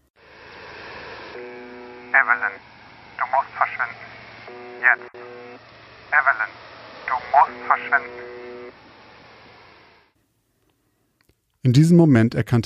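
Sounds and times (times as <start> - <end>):
constant hiss of radio static: 0.0 - 10.2
faint electronic tones humming: 1.2 - 10.1
thin distorted voice speaking through radio: 2.1 - 2.6, 3.2 - 8.5
speech: 2.2 - 8.4, 11.6 - 12.6.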